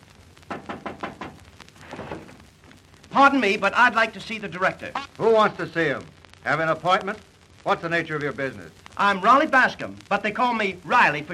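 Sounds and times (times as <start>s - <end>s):
sharp knocks on a film studio casting office window: 0.5s - 1.4s
speech: 3.2s - 11.3s.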